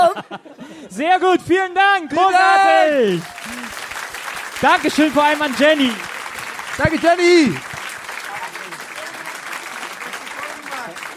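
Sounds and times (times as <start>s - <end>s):
laughter: 0.0s - 1.0s
speech: 0.2s - 3.4s, 4.6s - 6.1s, 6.8s - 7.7s
audience applause: 2.7s - 11.1s.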